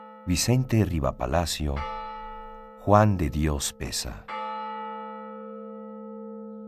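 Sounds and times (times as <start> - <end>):
bell striking eleven o'clock: 0.0 - 4.8
speech: 0.2 - 2.0, 2.8 - 4.4.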